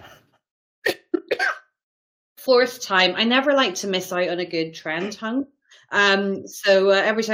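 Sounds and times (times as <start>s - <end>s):
person with COVID coughing harshly: 0.9s - 1.7s
speech: 2.4s - 7.3s.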